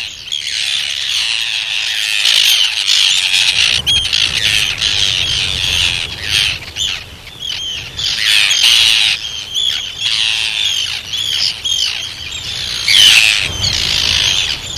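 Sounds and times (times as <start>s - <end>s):
Arctic tern harsh rasping calls: 0.0s - 14.7s.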